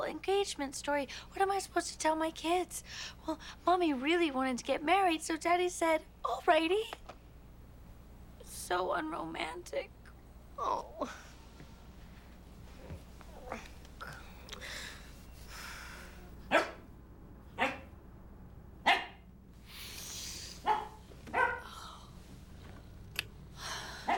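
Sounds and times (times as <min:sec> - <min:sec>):
low hiss: 0:00.0 - 0:24.1
speech: 0:00.1 - 0:07.1, 0:08.5 - 0:10.0, 0:10.6 - 0:11.3, 0:13.5 - 0:13.7
dog barking: 0:16.5 - 0:16.8, 0:17.6 - 0:17.9, 0:18.8 - 0:19.2, 0:20.6 - 0:21.6.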